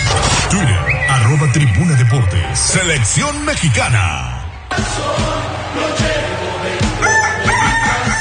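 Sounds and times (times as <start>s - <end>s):
produced radio station jingle with punchy beats and layered music: 0.0s - 8.1s
speech: 0.5s - 7.6s
rooster crowing: 7.0s - 8.1s.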